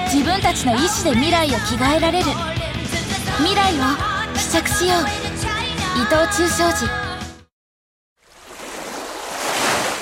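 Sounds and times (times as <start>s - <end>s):
speech: 0.1s - 2.6s, 3.4s - 5.4s, 6.0s - 7.0s
ocean surf washing ashore at the sea of Tsushima, Nagasaki Prefecture: 8.4s - 10.0s.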